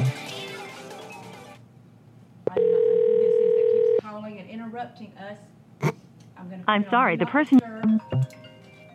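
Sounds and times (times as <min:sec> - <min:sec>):
custom redneck-style phone ringback tone: 0:02.5 - 0:04.0
speech: 0:04.8 - 0:08.3.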